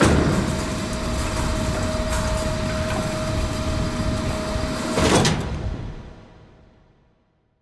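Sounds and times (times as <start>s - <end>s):
gate opening: 0.0s - 5.6s.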